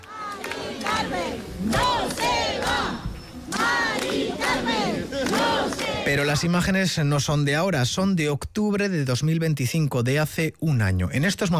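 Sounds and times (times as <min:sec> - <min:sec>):
large crowd of protesters cheering and shouting: 0:00.0 - 0:06.1
speech: 0:06.1 - 0:11.5.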